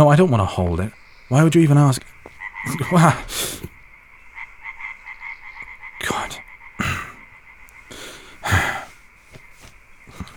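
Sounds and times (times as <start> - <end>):
speech: 0.0 - 3.7
frog croaking: 0.0 - 10.3.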